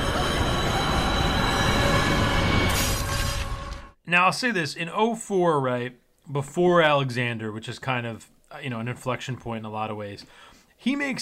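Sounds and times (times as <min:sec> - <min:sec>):
C train on the subway rumbling through a tunnel: 0:00.0 - 0:04.0
faint metallic wheel squeal of subway train: 0:00.0 - 0:04.0
speech: 0:04.2 - 0:11.1.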